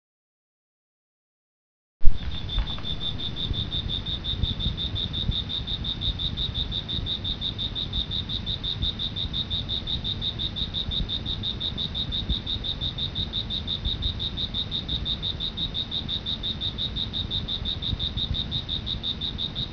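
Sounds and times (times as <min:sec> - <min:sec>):
constant low rumbling background noise: 0:02.0 - 0:06.6
cricket chirping in a steady rapid pulsed trill: 0:02.0 - 0:19.7.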